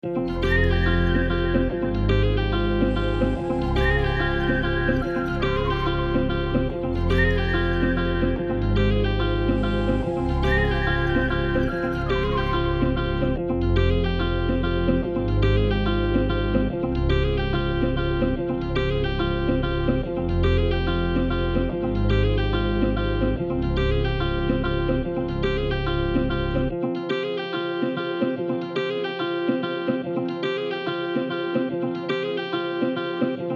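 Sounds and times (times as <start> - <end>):
bass in F minor: 0.0 - 26.9
guitar in F minor: 0.0 - 33.5
flute in F minor: 0.1 - 13.4.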